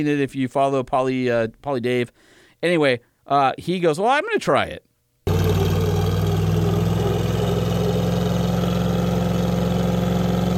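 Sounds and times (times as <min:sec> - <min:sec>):
speech: 0:00.0 - 0:04.9
built Jeep on 37-inch tires with locker engaged roaring during a burnout: 0:05.3 - 0:10.5.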